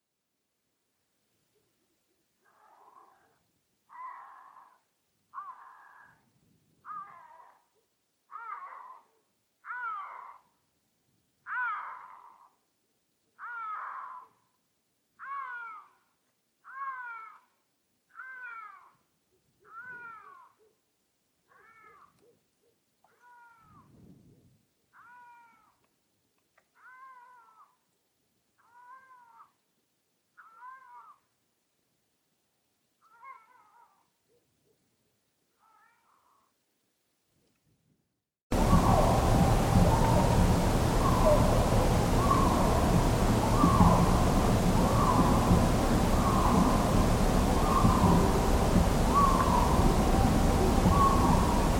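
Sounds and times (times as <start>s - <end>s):
lynx call: 38.5s - 51.7s.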